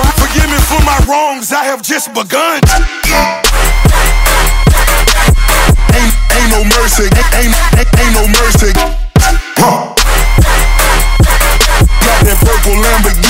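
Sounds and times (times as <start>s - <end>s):
electro music: 0.0s - 13.2s.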